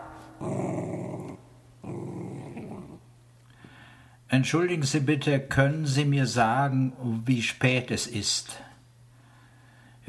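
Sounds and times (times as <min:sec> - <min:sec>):
dachshund growling: 0:00.0 - 0:03.1
speech: 0:04.3 - 0:08.7.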